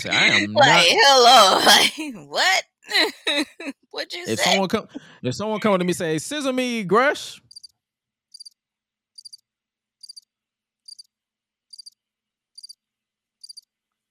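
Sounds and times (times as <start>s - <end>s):
laughter: 0.0s - 7.3s
speech: 0.0s - 7.4s
crickets chirping: 8.4s - 8.6s, 9.2s - 9.4s, 10.0s - 10.2s, 10.9s - 11.1s, 11.7s - 12.0s, 12.6s - 12.8s, 13.4s - 13.6s.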